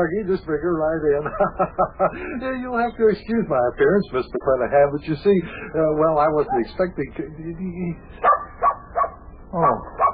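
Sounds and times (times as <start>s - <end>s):
speech: 0.0s - 8.4s, 9.5s - 10.0s
laughter: 1.0s - 2.9s
dog barking and yipping: 6.4s - 6.8s, 8.2s - 10.1s.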